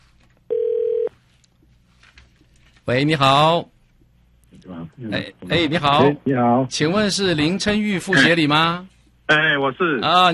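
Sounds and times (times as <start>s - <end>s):
electronic ringback tone on a telephone line: 0.5s - 1.1s
speech: 2.9s - 3.7s, 5.0s - 10.3s.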